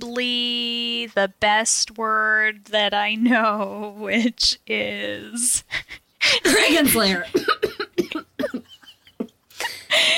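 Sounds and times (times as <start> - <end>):
speech: 0.1 - 8.6, 9.9 - 10.1
staged forced cough: 6.4 - 8.7.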